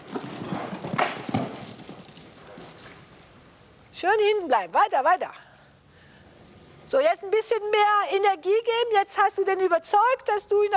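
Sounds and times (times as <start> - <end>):
horse hooves walking with big steps while led on a rope: 0.0 - 3.6
faint noise: 0.0 - 10.7
speech: 4.0 - 5.4, 6.9 - 10.7.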